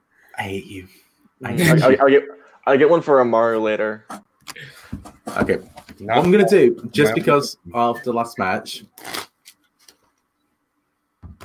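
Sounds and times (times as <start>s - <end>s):
speech: 0.4s - 9.2s
laughter: 1.4s - 2.1s
deck of cards being shuffled: 8.9s - 10.2s.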